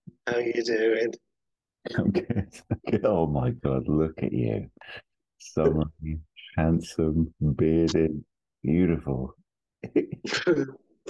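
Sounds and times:
speech: 0:00.3 - 0:11.0
throaty coughs with rasping cough: 0:10.2 - 0:11.0.

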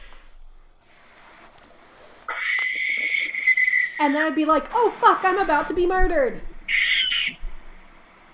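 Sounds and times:
barn owl call, harsh raspy screech: 0:02.3 - 0:04.4, 0:06.7 - 0:07.4
speech: 0:04.0 - 0:06.5.

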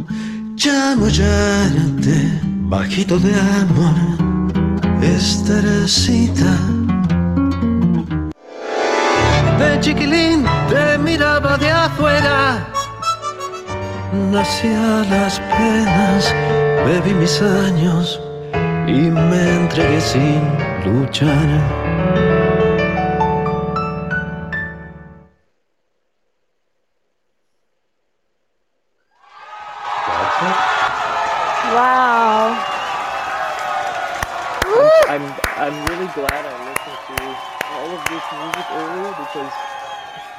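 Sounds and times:
music: 0:00.0 - 0:25.4
speech: 0:00.1 - 0:04.2, 0:05.0 - 0:06.8, 0:09.6 - 0:12.8, 0:14.1 - 0:18.3, 0:18.9 - 0:22.4
crowd applauding and cheering: 0:29.2 - 0:40.3
whoops from a crowd: 0:29.2 - 0:40.3.

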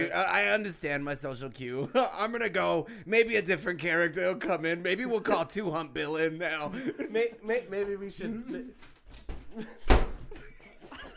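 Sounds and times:
speech: 0:00.0 - 0:09.8
door slamming shut: 0:09.2 - 0:10.3.

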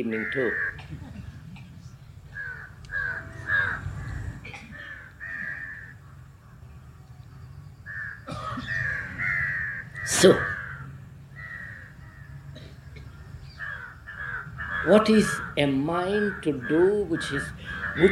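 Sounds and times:
crows cawing: 0:00.0 - 0:00.9, 0:02.3 - 0:07.0, 0:07.8 - 0:18.1
speech: 0:00.0 - 0:01.0, 0:10.1 - 0:10.5, 0:14.8 - 0:18.1
low rumble: 0:00.0 - 0:18.1.

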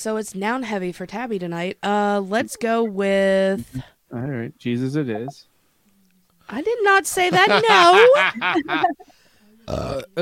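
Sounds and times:
speech: 0:00.0 - 0:05.5, 0:06.5 - 0:10.1
laughter: 0:07.1 - 0:09.1
loud voiced burp with cracking pitch: 0:09.6 - 0:10.1.

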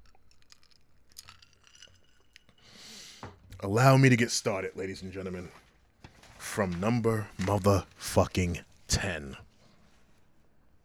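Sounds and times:
person sipping whiskey from a glass: 0:00.0 - 0:03.5
breathy exhale: 0:02.6 - 0:03.4
speech: 0:03.6 - 0:05.6, 0:06.6 - 0:09.5.

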